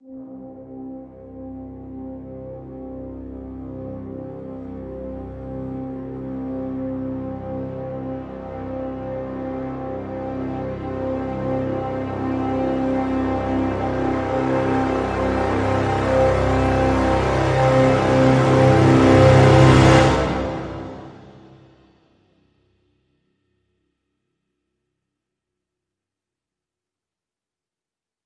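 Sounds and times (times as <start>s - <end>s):
full brass swell in C: 0.4s - 21.9s.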